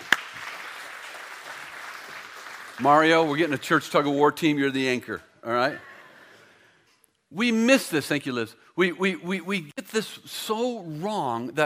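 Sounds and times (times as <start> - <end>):
sharp clap: 0.0 - 3.3
church congregation applause: 0.0 - 4.1
speech: 2.8 - 5.9, 7.3 - 11.6.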